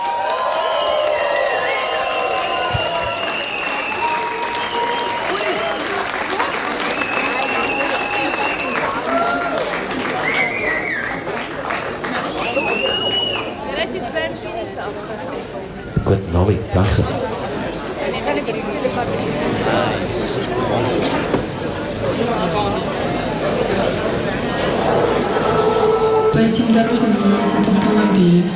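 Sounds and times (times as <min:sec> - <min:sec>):
scattered cheers and whistles: 0:00.0 - 0:11.4, 0:12.2 - 0:13.7
large audience applauding: 0:00.0 - 0:13.7
crowd voices: 0:00.0 - 0:28.5.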